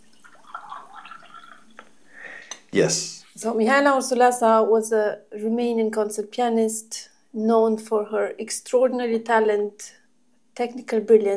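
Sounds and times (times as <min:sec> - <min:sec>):
tea trickling and splashing into a cup: 0:00.0 - 0:01.9
faint drips of tea: 0:00.0 - 0:02.7
speech: 0:02.8 - 0:10.0, 0:10.6 - 0:11.3.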